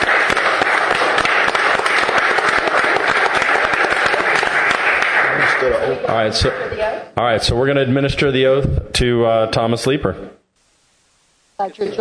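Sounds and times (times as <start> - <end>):
audience applause after a vote at a city meeting: 0.0 - 6.6
speech: 6.1 - 10.4, 11.6 - 11.9.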